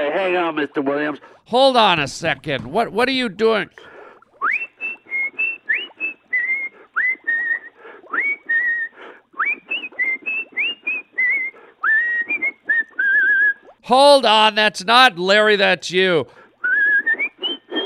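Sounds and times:
speech: 0:00.1 - 0:03.9, 0:13.9 - 0:16.4
man whistling a lively tune: 0:04.4 - 0:13.6, 0:16.6 - 0:17.8.

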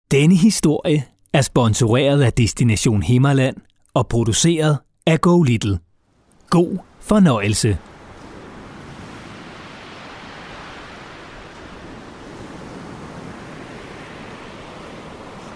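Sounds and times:
speech: 0:00.1 - 0:05.9, 0:06.5 - 0:07.9
waves crashing against the shore of the Limfjord in North Jutland, Denmark: 0:06.5 - 0:15.5
gusting wind tearing at houses in North Jutland: 0:07.7 - 0:15.5.

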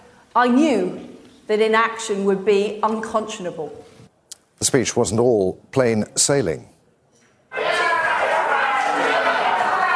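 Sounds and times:
speech: 0:00.4 - 0:03.9, 0:04.6 - 0:06.7
large crowd in a conference hall shouting and booing at protesters: 0:07.5 - 0:09.9.

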